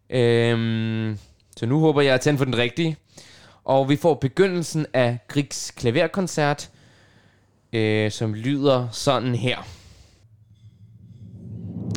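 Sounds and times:
speech: 0.1 - 6.8, 7.7 - 9.8
orchestral drum roll from a recording: 10.2 - 11.9.

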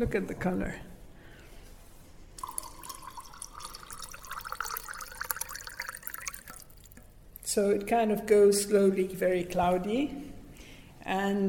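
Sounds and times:
speech: 0.0 - 0.9, 7.6 - 10.4, 11.1 - 11.4
water pouring into a glass of arak: 2.4 - 7.1.

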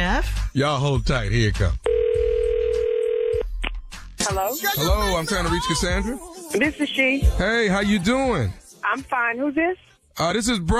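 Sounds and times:
speech: 0.2 - 1.8, 4.3 - 10.7
telephone dial tone: 1.9 - 3.4.

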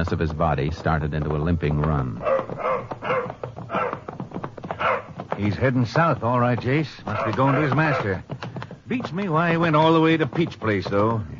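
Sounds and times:
speech: 0.0 - 3.5, 5.4 - 11.3
dog barking: 2.2 - 4.1, 4.8 - 5.2, 7.1 - 8.2.

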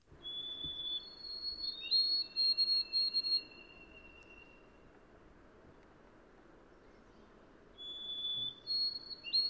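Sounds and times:
soft steady background hiss: 0.0 - 9.4
white-throated sparrow whistled song: 0.2 - 4.8, 7.8 - 9.4.

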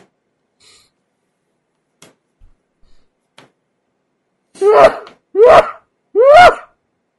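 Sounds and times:
loud sneezes: 4.5 - 6.6
speech: 4.6 - 5.7.

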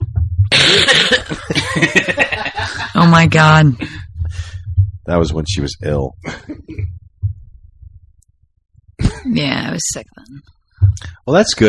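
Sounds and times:
sharp cough: 0.5 - 1.4
breathy chuckling: 0.5 - 3.0, 6.2 - 6.9
speech: 1.8 - 4.0, 5.1 - 6.9, 9.2 - 11.6.

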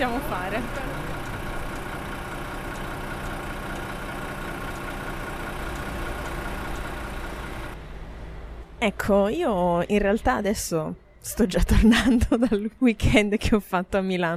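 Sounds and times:
speech: 0.0 - 1.1, 8.8 - 14.3
bus engine idling: 0.0 - 9.6
laughter: 11.3 - 12.8.

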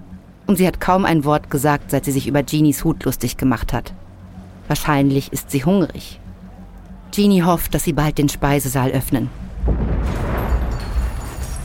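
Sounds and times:
speech: 0.5 - 4.1, 4.7 - 6.2, 7.1 - 10.2
crackling scatter of debris: 9.6 - 11.6
loud booming explosion below deck on a ship: 9.6 - 11.6
porthole glass shattering: 10.0 - 11.6.

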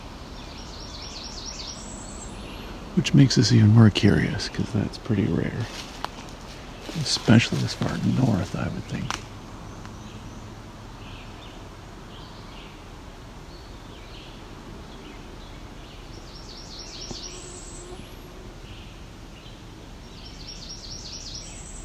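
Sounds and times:
cerulean warbler singing in southern Ontario: 0.0 - 3.7, 9.6 - 21.8
speech: 3.0 - 5.9, 7.0 - 9.3.

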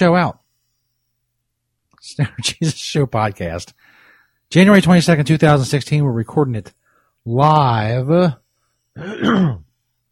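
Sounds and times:
speech: 0.0 - 0.4, 2.0 - 8.4, 9.0 - 9.6
loud throat clearing: 9.0 - 9.7.

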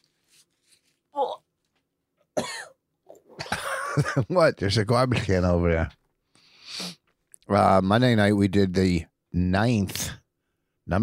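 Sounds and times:
speech: 1.2 - 1.4, 4.0 - 6.0, 7.5 - 10.0, 10.9 - 11.0
throaty cough-like noise: 2.3 - 4.2
person blowing nose: 6.6 - 7.0.

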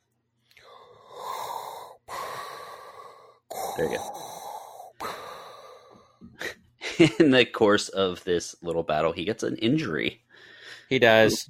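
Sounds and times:
voice imitating heavy mechanical respirator breathing: 0.6 - 6.6
speech: 3.8 - 4.3, 7.0 - 10.2, 10.9 - 11.4.

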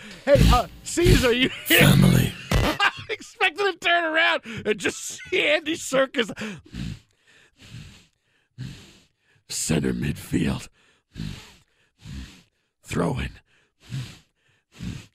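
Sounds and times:
voice imitating heavy ape-like breathing with grunting: 0.0 - 2.4, 6.2 - 15.1
speech: 0.2 - 6.8, 9.5 - 11.4, 12.9 - 14.2
laughter: 1.0 - 3.7, 4.4 - 6.4.

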